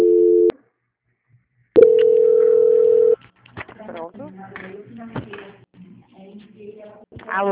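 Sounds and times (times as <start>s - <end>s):
telephone call transfer tones: 1.8s - 3.2s
speech: 7.4s - 7.5s.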